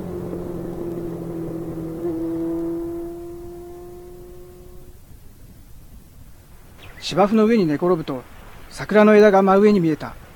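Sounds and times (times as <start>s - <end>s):
motorcycle engine roaring and revving while ridden fast on the Tama River embankment: 0.0s - 5.1s
speech: 7.0s - 10.2s.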